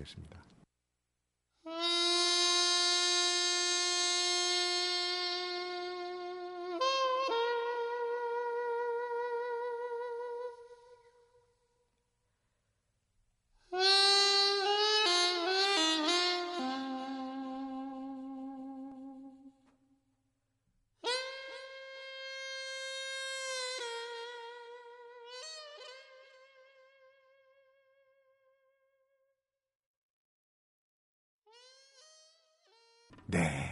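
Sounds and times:
speech: 0.0s - 0.5s, 1.6s - 2.0s
Korean double-reed piri playing loud nasal sustained notes: 1.6s - 11.7s, 13.7s - 19.8s, 21.0s - 28.4s.

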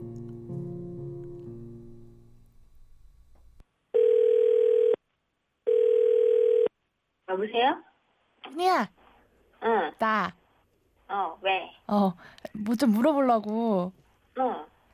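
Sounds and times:
soft music: 0.0s - 2.7s
phone ringback tone while placing a call: 4.0s - 5.0s, 5.7s - 6.7s
speech: 7.4s - 7.9s, 8.5s - 9.0s, 9.6s - 10.4s, 11.1s - 14.7s.

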